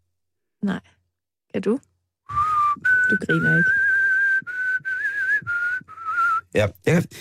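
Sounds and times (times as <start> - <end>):
speech: 0.6 - 1.9, 3.1 - 3.8, 6.5 - 7.2
person whistling sustained notes: 2.3 - 6.6.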